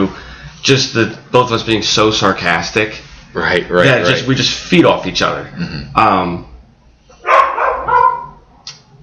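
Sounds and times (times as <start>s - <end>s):
speech: 0.1s - 6.5s
dog barking: 7.2s - 8.5s.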